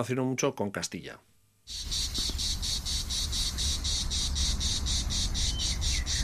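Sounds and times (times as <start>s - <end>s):
speech: 0.0s - 2.3s
low hum: 0.0s - 6.2s
cicada singing in a pulsing buzz: 1.7s - 6.2s.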